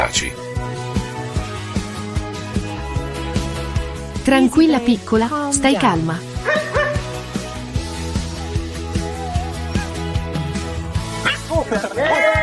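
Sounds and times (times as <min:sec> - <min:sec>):
speech: 0:00.0 - 0:00.4, 0:04.2 - 0:06.6
steady musical backing: 0:00.0 - 0:12.4
dog barking and yipping: 0:06.4 - 0:07.1, 0:11.2 - 0:11.5
laughter: 0:11.1 - 0:12.4.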